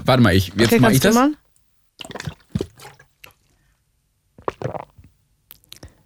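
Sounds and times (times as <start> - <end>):
speech: 0.1 - 1.4
person swallowing a drink loudly: 2.0 - 3.5, 4.4 - 6.0.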